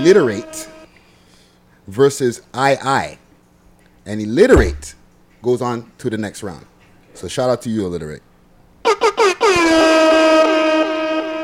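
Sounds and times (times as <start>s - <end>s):
speech: 0.0s - 0.7s, 1.9s - 3.2s, 4.0s - 9.9s
loud blaring brassy air horn blasts: 0.0s - 0.9s, 8.9s - 11.4s.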